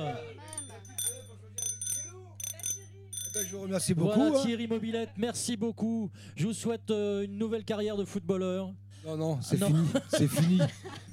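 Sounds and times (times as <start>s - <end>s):
small bicycle bell ringing in quick bright dings: 0.5s - 3.7s
speech: 3.4s - 11.1s
laughter: 9.7s - 11.1s.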